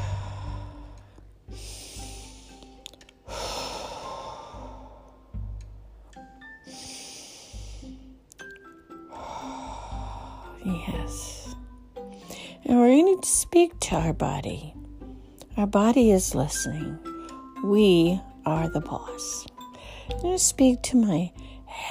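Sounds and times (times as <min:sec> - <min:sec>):
slow deep human breathing during a guided stillness exercise: 0:00.0 - 0:08.2, 0:09.0 - 0:10.7, 0:11.4 - 0:12.7
speech: 0:10.8 - 0:11.4, 0:12.7 - 0:14.8, 0:15.6 - 0:19.5, 0:20.1 - 0:21.8.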